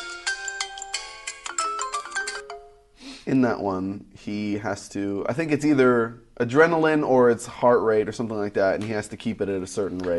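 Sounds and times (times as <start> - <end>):
phone ringtone with bouncy electronic melody: 0.0 - 2.8
speech: 3.2 - 10.1.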